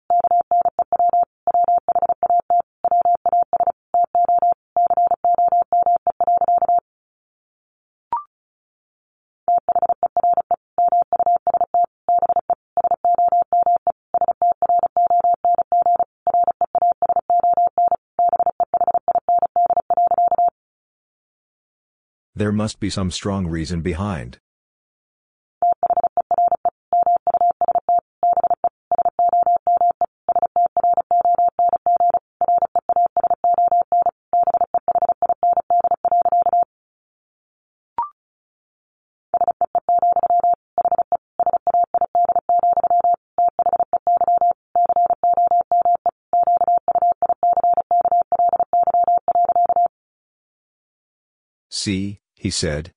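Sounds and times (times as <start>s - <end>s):
rapid Morse code beeps at 35 words per minute: 0.1s - 6.8s, 9.5s - 20.5s, 25.6s - 36.7s, 39.4s - 49.9s
speech: 22.4s - 24.4s, 51.8s - 52.9s.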